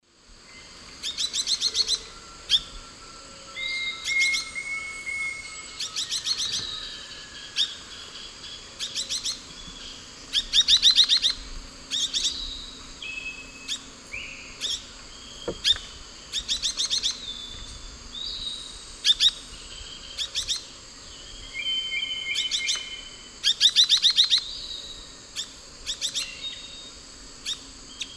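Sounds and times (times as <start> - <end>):
Euphonia rufiventris calls and song in Eastern Lowlands of South America: 0.5 - 28.1.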